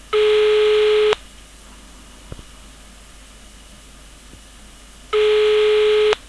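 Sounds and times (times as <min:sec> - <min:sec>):
Slovenian telephone ring: 0:00.1 - 0:01.2, 0:05.2 - 0:06.2.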